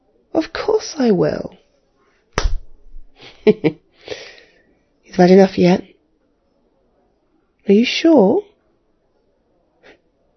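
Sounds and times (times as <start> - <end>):
speech: 0.3 - 1.6, 3.4 - 4.2, 5.2 - 5.9, 7.7 - 8.5
slap to the face: 2.4 - 2.8.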